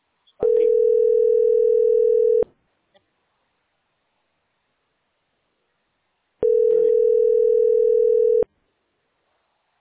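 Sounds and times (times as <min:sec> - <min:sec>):
steady mid-pitched telephone line tone while a number is dialed: 0:00.4 - 0:02.5, 0:06.4 - 0:08.5.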